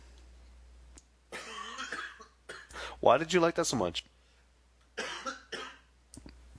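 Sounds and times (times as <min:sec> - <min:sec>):
small short coughs: 0:01.3 - 0:02.9, 0:05.0 - 0:05.9
speech: 0:03.0 - 0:04.2.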